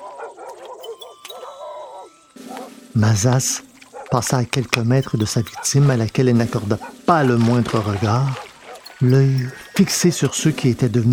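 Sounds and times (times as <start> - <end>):
two hunting dogs barking and yelping during a chase: 0.0 - 2.7, 3.7 - 6.1, 6.7 - 7.3, 8.4 - 10.2
speech: 3.0 - 8.4, 9.0 - 11.1.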